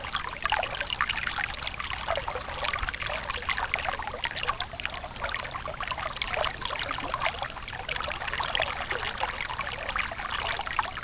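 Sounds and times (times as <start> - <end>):
water stream: 0.0 - 11.0.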